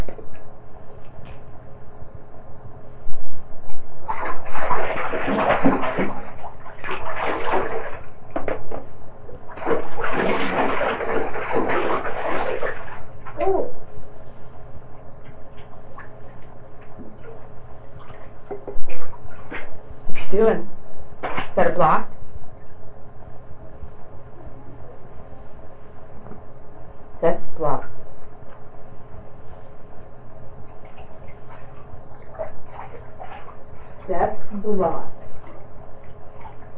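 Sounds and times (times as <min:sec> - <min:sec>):
water splashing and sloshing in a bathtub: 0:03.7 - 0:13.9, 0:15.1 - 0:22.7, 0:29.6 - 0:36.7.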